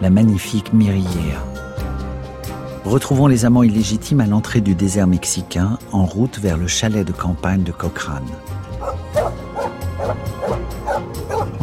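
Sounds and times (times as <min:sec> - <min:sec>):
speech: 0:00.0 - 0:01.6, 0:02.8 - 0:08.5
female dog barking: 0:08.8 - 0:11.6.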